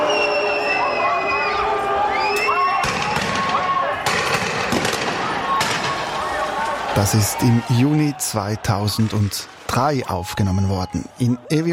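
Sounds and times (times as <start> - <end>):
shrill whistling from a riot: 0.0 - 2.8
crowd uproar from a riot after a demonstration: 0.0 - 11.7
sharp bangs: 2.8 - 6.9
speech: 7.0 - 11.7.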